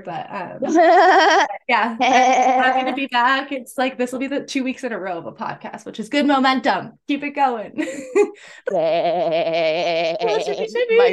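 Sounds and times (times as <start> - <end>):
speech: 0.0 - 11.1
person imitating a sheep's bleat: 0.7 - 3.0, 8.7 - 11.1.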